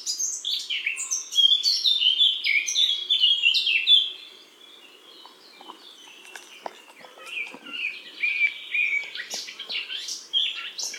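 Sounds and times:
Eurasian blackcap Sylvia atricapilla song: 0.0s - 10.9s.

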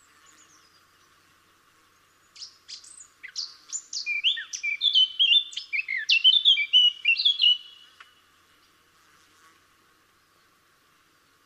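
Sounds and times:
Eurasian blackcap Sylvia atricapilla singing: 2.4s - 7.8s.

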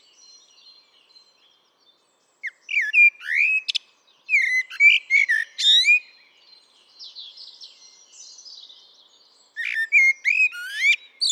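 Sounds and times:
Eurasian blackbird Turdus merula song: 2.4s - 6.1s, 9.6s - 11.3s.

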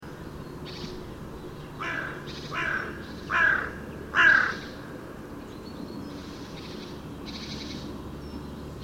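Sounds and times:
low steady background hum: 0.0s - 8.8s
carrion crow Corvus corone cawing: 1.8s - 4.8s.

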